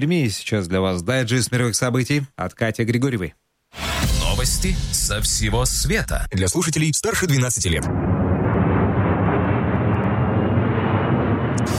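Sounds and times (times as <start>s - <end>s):
speech: 0.0s - 8.1s
airplane jet engine roaring during takeoff: 7.9s - 11.7s.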